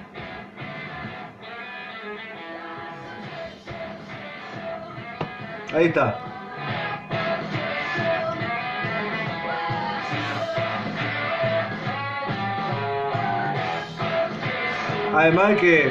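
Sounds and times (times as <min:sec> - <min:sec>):
hard-hit dry drums with little reverb: 0:03.3 - 0:15.8
speech: 0:05.7 - 0:06.3, 0:15.2 - 0:15.8.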